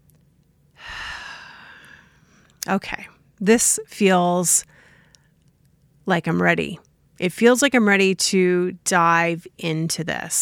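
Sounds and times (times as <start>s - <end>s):
person taking a deep breath in to the belly: 0.8s - 2.5s
speech: 2.6s - 4.7s, 6.1s - 10.4s.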